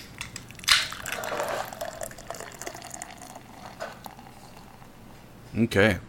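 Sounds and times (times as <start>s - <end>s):
can of Mexican-style lager with lime cracking open: 0.0s - 1.8s
Mexican-style lager with lime pouring and fizzing: 0.0s - 5.5s.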